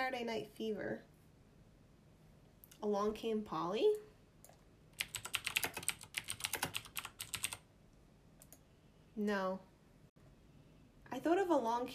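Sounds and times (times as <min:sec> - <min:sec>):
speech: 0:00.1 - 0:01.1, 0:02.8 - 0:04.1, 0:09.2 - 0:09.7, 0:11.1 - 0:11.9
computer keyboard typing: 0:04.4 - 0:07.7.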